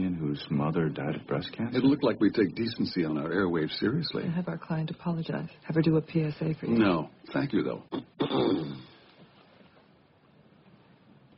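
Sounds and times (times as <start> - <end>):
speech: 0.4 - 8.9
man clearing his throat: 7.9 - 9.0.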